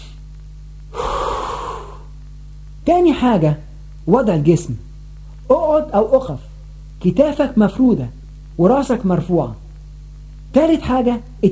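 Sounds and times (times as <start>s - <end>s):
deep breath from a breathing exercise: 0.9s - 2.1s
speech: 2.9s - 4.9s, 5.5s - 9.6s, 10.5s - 11.5s.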